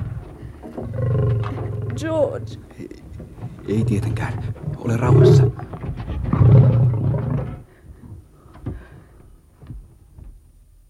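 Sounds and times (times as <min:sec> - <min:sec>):
lions roaring trying to break through a door: 0:00.7 - 0:02.6, 0:03.6 - 0:07.6
speech: 0:02.0 - 0:03.0, 0:03.7 - 0:05.7.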